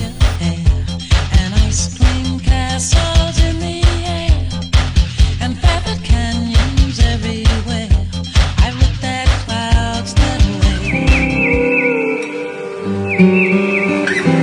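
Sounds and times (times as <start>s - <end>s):
upbeat instrumental track with a driving beat: 0.0s - 14.3s
high swooping bird-like chirps and whistles: 10.8s - 14.3s.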